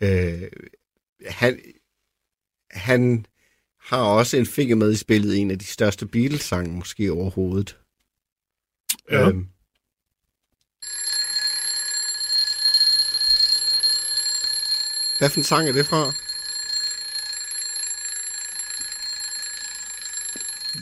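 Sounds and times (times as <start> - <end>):
speech: 0.0 - 1.7, 2.7 - 7.8, 9.1 - 9.6, 15.2 - 16.3
mechanical alarm clock ringing: 10.8 - 20.8.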